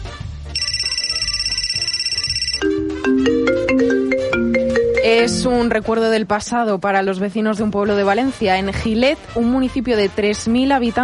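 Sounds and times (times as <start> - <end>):
mobile phone ringtone with buzzing trill and electronic melody: 0.6 - 5.5
speech: 5.1 - 11.0.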